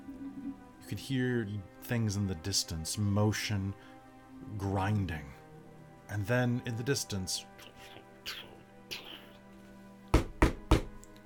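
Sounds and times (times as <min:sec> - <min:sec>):
speech: 0:00.9 - 0:05.4, 0:06.1 - 0:08.4
knocking at a door of a grand estate: 0:10.1 - 0:11.0.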